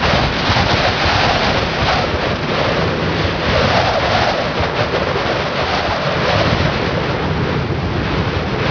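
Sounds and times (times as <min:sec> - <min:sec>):
wind: 0:00.0 - 0:08.6.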